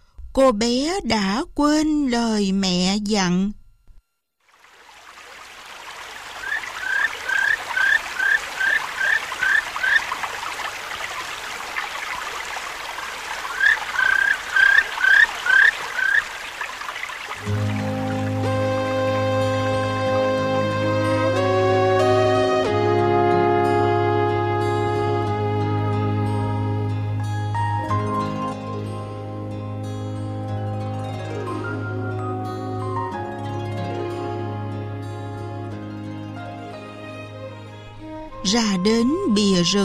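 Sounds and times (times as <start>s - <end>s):
speech: 0.4s - 3.6s, 38.5s - 39.8s
babbling stream: 4.5s - 18.9s
gentle music: 4.7s - 39.8s
bird chirping: 6.4s - 10.1s, 13.4s - 17.5s.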